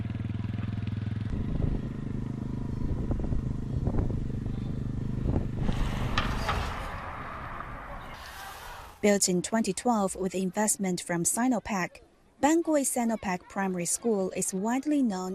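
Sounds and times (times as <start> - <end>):
motorcycle engine idling, revving and pulling away: 0.0 - 8.8
clanks: 5.3 - 8.4
speech: 9.0 - 15.3.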